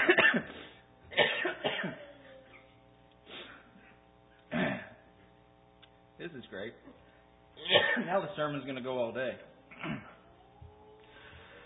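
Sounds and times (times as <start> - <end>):
person coughing: 0.0 - 2.2, 4.5 - 5.1, 7.6 - 8.2, 9.7 - 10.2
speech: 6.3 - 10.0.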